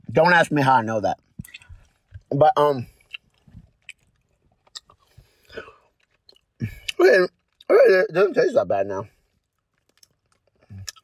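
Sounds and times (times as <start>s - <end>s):
speech: 0.1s - 1.3s, 2.3s - 2.9s, 6.6s - 9.2s
chewing a chocolate bar: 1.3s - 7.7s, 9.1s - 11.0s.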